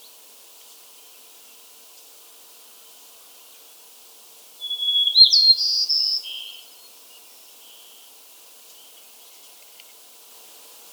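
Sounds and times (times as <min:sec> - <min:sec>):
White-crowned sparrow Zonotrichia leucophrys gambelii song: 0:04.6 - 0:09.6.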